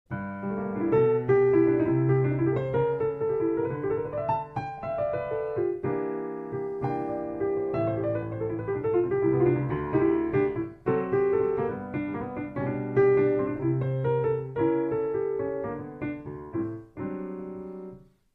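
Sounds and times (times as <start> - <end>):
piano intro: 0.1 - 18.3.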